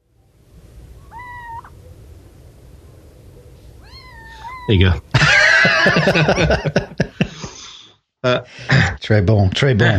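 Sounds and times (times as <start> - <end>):
steady low noise: 0.0 - 9.9
little owl screeching: 0.9 - 2.0, 3.7 - 4.9
speech: 4.7 - 5.1, 5.8 - 7.2, 8.2 - 9.9
laughter: 5.1 - 7.5.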